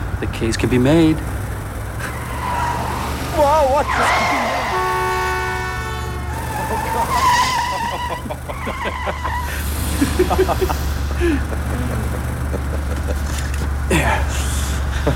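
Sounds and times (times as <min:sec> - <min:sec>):
car engine rumbling: 0:00.0 - 0:15.1
car tires screeching: 0:00.0 - 0:15.1
speech: 0:00.2 - 0:01.4, 0:03.4 - 0:04.8, 0:07.0 - 0:15.1
laughter: 0:02.0 - 0:04.9, 0:06.3 - 0:15.1
sustained car horn blast: 0:03.3 - 0:08.2.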